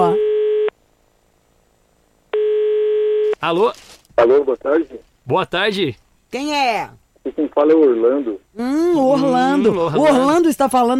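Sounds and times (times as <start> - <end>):
telephone line tone beeps while placing an international call: 0.0 - 0.7, 2.4 - 3.4
speech: 3.4 - 10.9.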